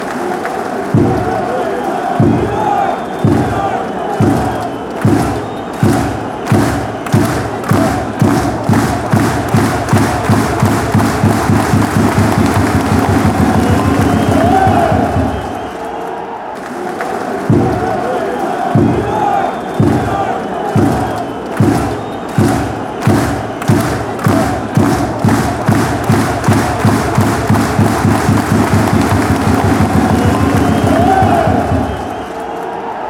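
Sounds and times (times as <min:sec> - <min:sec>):
German fans chanting: 0:00.0 - 0:33.0
drums: 0:00.8 - 0:15.8, 0:16.6 - 0:32.4.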